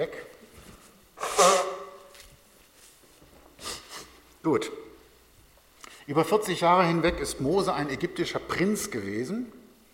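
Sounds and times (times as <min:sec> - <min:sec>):
speech: 0:00.0 - 0:00.3, 0:04.4 - 0:04.9, 0:06.1 - 0:09.6
soft puff: 0:01.2 - 0:02.1
person blowing nose: 0:01.2 - 0:02.2, 0:03.6 - 0:04.2.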